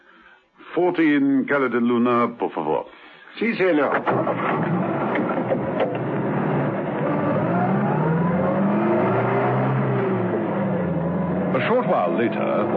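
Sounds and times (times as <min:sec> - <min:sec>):
speech: 0:00.8 - 0:04.8, 0:11.6 - 0:12.7
taxi engine rumble driving through narrow streets: 0:04.0 - 0:12.7.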